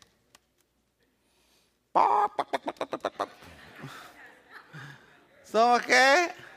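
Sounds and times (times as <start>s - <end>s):
speech: 2.0s - 2.9s, 5.5s - 6.4s
church audience imitating chicks peeping: 2.0s - 3.3s
people chuckling: 2.0s - 5.5s
crowd murmur: 3.1s - 5.6s.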